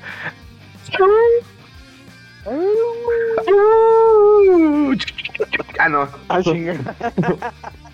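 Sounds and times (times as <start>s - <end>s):
speech: 0.2s - 1.2s, 5.9s - 7.8s
man imitating a wolf howl: 2.4s - 5.2s
laughter: 4.4s - 7.9s.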